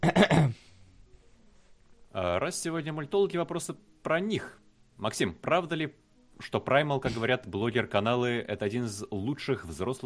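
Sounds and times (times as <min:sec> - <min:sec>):
throat clearing and coughing: 0:00.0 - 0:00.6, 0:07.0 - 0:07.3
speech: 0:02.5 - 0:10.0.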